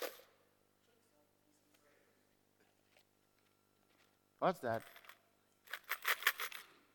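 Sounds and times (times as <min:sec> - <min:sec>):
coins dropping and clinking: 0:00.0 - 0:00.3, 0:04.7 - 0:06.8
speech: 0:04.4 - 0:05.0.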